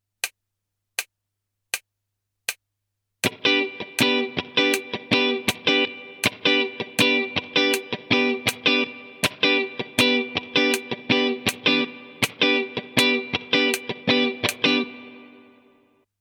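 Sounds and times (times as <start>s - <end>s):
funky rhythm: 3.2s - 15.1s.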